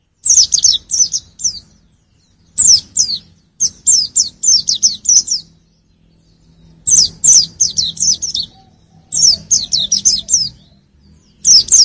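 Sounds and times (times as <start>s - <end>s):
white-eye singing high fast chirping phrases: 0.0s - 11.7s.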